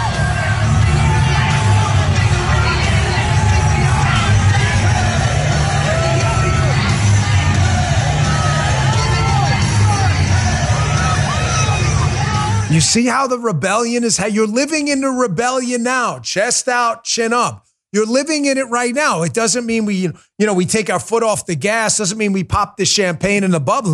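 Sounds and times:
large arena crowd at a UFC event cheering, yelling and whooping: 0.0 - 13.2
speech: 12.8 - 23.9.

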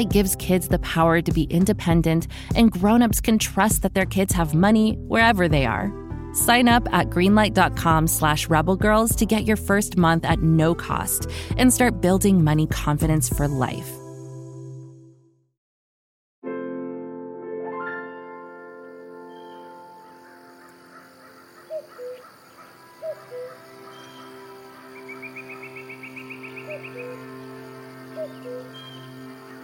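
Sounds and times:
speech: 0.0 - 14.0
bird calls and short chirps: 19.2 - 29.6
steady humming musical drone: 19.8 - 29.6.

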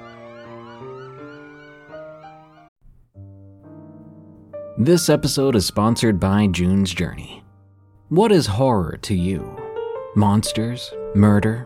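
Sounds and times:
emergency vehicle sirens wailing: 0.0 - 2.7
speech: 4.8 - 7.4, 8.1 - 9.6, 10.2 - 11.6.

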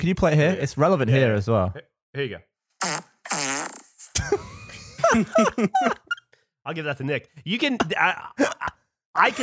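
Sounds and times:
speech: 0.0 - 3.1, 5.1 - 9.4
buzzy sputtering fart: 2.8 - 4.2
laughter: 4.2 - 6.2.

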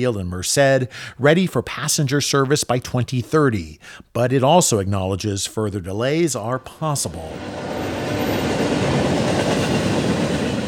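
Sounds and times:
speech: 0.0 - 8.5
slow freight train rumbling on rails through a valley in California: 7.2 - 10.6.

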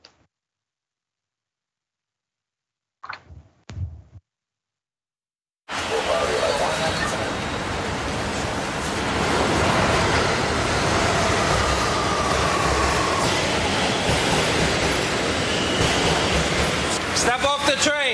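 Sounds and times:
New York City subway train bound for Brooklyn rumbling: 5.7 - 18.1
harmonic screeching of a subway train: 10.7 - 17.9.

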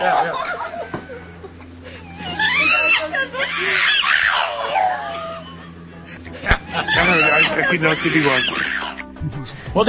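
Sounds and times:
laughter: 0.0 - 8.6
dog yowling and howling as if talking: 2.1 - 5.9, 6.6 - 9.0.

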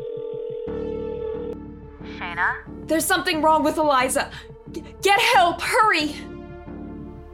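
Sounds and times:
busy telephone line tone: 0.0 - 1.6
speech: 2.3 - 6.3.

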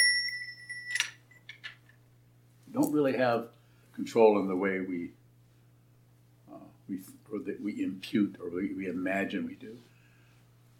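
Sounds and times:
small bell ringing: 0.0 - 1.4
speech: 2.8 - 5.2, 6.9 - 9.9.

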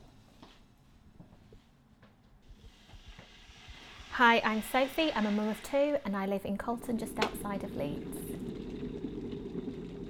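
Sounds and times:
water boiling in an electric kettle at a home in Colton: 2.4 - 10.0
speech: 4.2 - 8.5.

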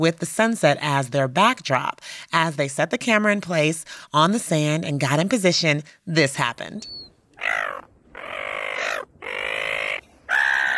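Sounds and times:
speech: 0.0 - 7.7
seagulls squawking while swooping on beach: 7.4 - 10.7.

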